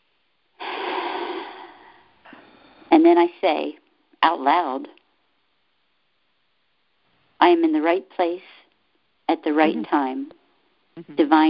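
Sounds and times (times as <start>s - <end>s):
deep breath taken to ease stress: 0.6s - 2.9s
speech: 3.0s - 5.0s, 7.4s - 8.6s, 9.3s - 10.4s, 11.0s - 11.4s.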